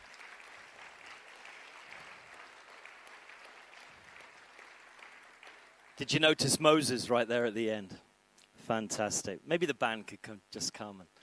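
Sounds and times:
audience applause: 0.0 - 6.1
speech: 6.0 - 8.0, 8.7 - 11.2.

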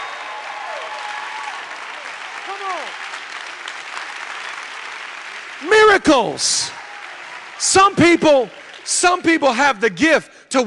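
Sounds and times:
voices whooping and calling out: 0.0 - 3.1
large crowd clapping and applauding: 0.0 - 9.8
speech: 2.5 - 3.2, 5.6 - 6.8, 7.6 - 10.6.

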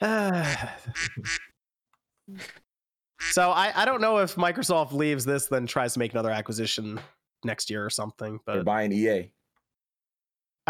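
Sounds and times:
speech: 0.0 - 1.5, 3.3 - 9.4
duck quack sound effect: 1.0 - 1.5.

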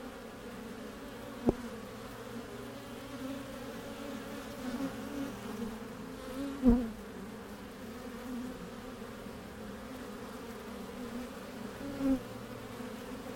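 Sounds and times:
many bees humming at beehive entrance: 0.0 - 13.3.

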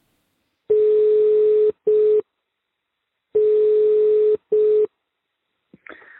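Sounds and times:
telephone ringback tone: 0.7 - 2.2, 3.4 - 4.9.

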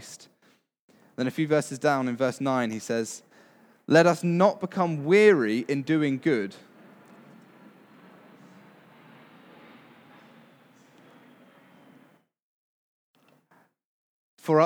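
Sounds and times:
speech: 1.2 - 3.3, 3.9 - 6.7, 14.4 - 14.6
airplane passing overhead: 5.6 - 12.1.

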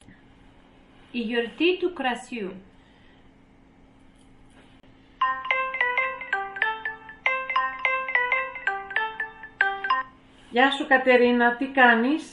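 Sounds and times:
faint steady hum: 0.0 - 12.3
speech: 1.1 - 2.7, 10.6 - 12.3
phone ringtone melody for an incoming call: 5.2 - 10.2.

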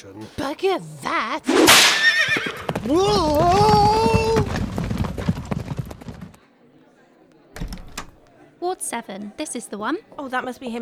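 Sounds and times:
speech: 0.0 - 3.9, 8.9 - 10.8
horse hooves trotting: 1.6 - 6.4.

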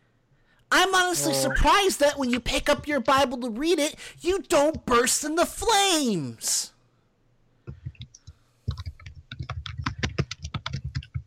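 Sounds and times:
speech: 0.7 - 6.7
rapid typing on a computer keyboard: 7.7 - 11.2.

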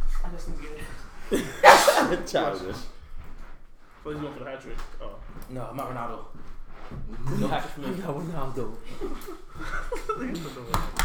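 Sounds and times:
laughter: 1.2 - 2.9, 7.2 - 11.0
speech: 1.3 - 3.0, 4.0 - 11.0
loud sharp sneeze: 1.4 - 2.6.

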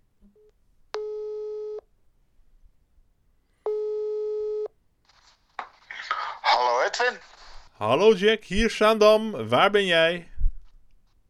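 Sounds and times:
telephone ringing tone while a call is placed: 1.0 - 1.9, 3.7 - 4.7
speech: 6.9 - 10.3.

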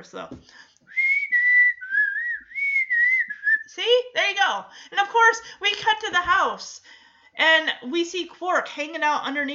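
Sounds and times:
speech: 0.0 - 0.7, 3.8 - 9.5
person whistling a short wavering melody: 0.9 - 3.7.

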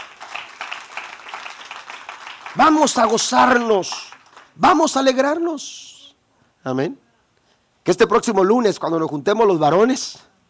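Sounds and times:
audience applauding: 0.0 - 4.6
speech: 2.6 - 5.9, 6.6 - 7.0, 7.9 - 10.3.

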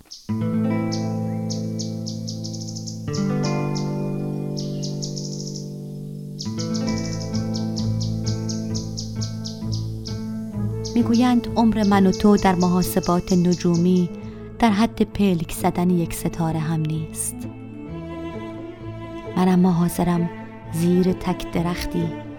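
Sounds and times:
canaries chirping and trilling: 0.0 - 14.2
speech: 0.1 - 0.6, 11.0 - 17.6, 19.4 - 22.3
steady sustained musical drone: 0.4 - 14.8, 15.7 - 22.3.

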